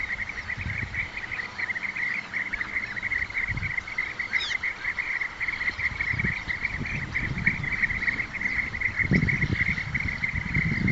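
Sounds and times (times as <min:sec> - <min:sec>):
European bee-eater Merops apiaster calls: 0:00.0 - 0:10.9.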